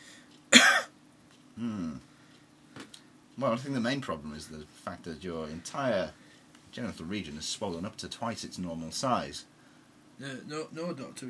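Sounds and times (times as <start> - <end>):
sharp loud cough: 0.5 - 1.0
speech: 1.6 - 2.1, 3.4 - 9.5, 10.2 - 11.2.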